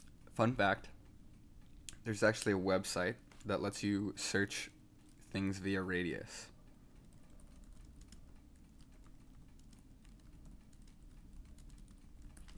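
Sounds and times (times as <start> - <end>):
low hum: 0.0 - 12.5
speech: 0.4 - 0.9, 2.0 - 6.5
rapid typing of a search query on a computer keyboard: 7.0 - 12.5.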